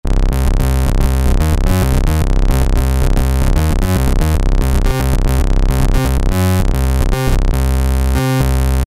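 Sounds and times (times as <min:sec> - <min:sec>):
synth bass factory preset: 0:00.0 - 0:08.8.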